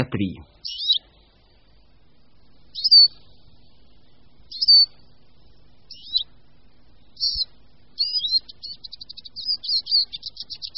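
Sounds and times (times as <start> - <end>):
speech: 0.0 - 0.8
Eurasian siskin singing: 0.0 - 1.2, 2.6 - 3.8, 4.4 - 5.2, 5.8 - 6.4, 7.0 - 10.7.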